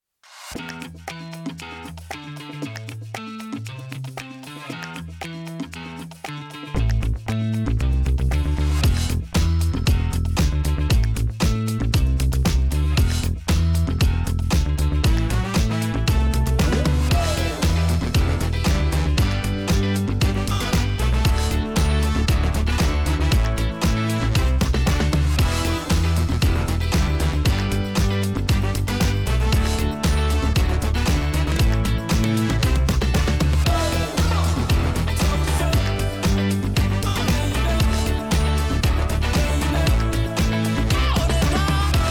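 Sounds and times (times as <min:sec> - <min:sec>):
energetic retro funk background music: 0:00.3 - 0:42.0.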